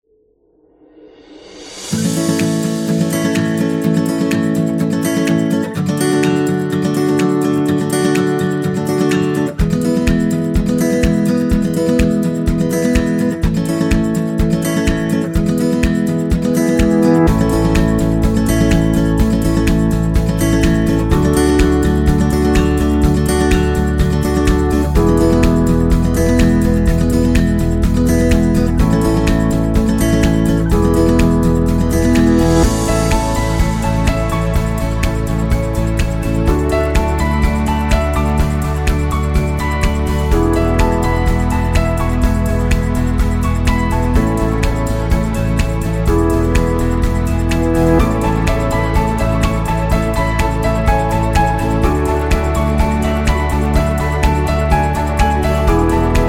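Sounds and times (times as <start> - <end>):
happy uplifting acoustic guitar music: 1.8 - 56.2.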